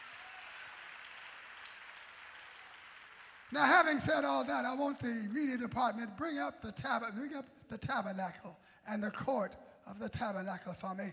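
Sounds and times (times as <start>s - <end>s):
crowd applauding: 0.0s - 5.6s
speech: 3.5s - 11.1s.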